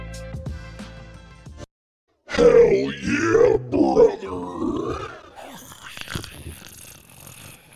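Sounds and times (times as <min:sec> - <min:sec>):
gargling in the throat: 0:02.3 - 0:07.7.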